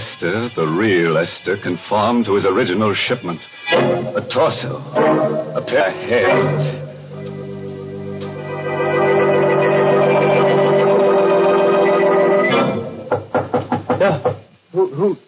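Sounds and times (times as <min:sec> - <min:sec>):
speech: 0:00.2 - 0:06.9
sustained musical tone: 0:03.7 - 0:13.2
knocking on an alley door: 0:13.1 - 0:14.5.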